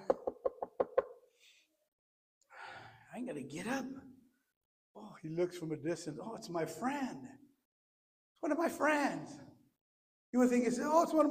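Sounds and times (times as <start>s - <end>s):
quick firm knocks on a door: 0.0s - 1.1s
speech: 3.2s - 4.2s, 5.0s - 7.4s, 8.4s - 9.5s, 10.3s - 11.2s.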